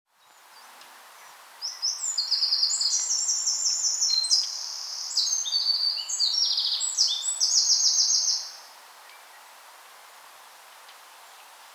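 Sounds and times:
Eurasian wren Troglodytes troglodytes singing: 1.6s - 8.6s.

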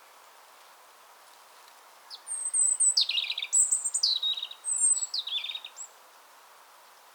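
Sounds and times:
European robin Erithacus rubecula song with whistles and trills: 2.1s - 5.9s.

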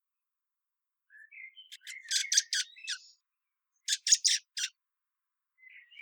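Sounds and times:
common blackbird calling, Turdus merula: 1.5s - 3.1s, 3.9s - 4.7s.

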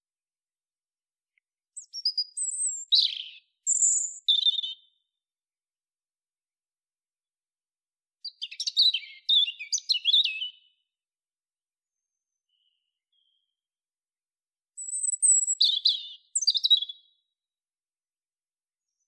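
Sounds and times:
European robin Erithacus rubecula singing: 1.8s - 5.1s, 8.2s - 10.9s, 14.8s - 17.3s.

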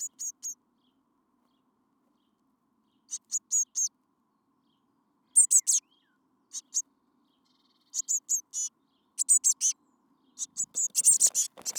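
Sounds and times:
Eurasian blue tit Cyanistes caeruleus calls: 0.0s - 0.6s, 3.1s - 3.9s, 5.4s - 5.8s, 6.5s - 6.8s, 7.9s - 9.8s, 10.4s - 11.7s.

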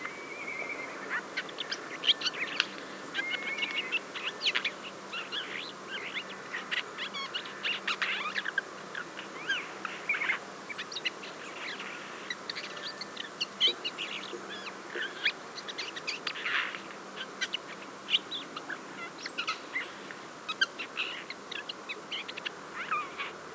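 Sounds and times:
Garrulus glandarius calling: 0.1s - 23.4s.

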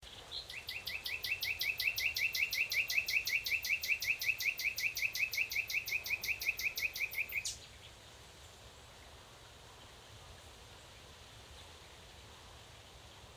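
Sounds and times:
common nightingale Luscinia megarhynchos singing: 0.0s - 8.0s.

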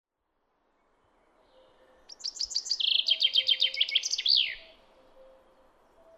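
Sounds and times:
Common chaffinch Fringilla coelebs singing: 1.5s - 6.1s.

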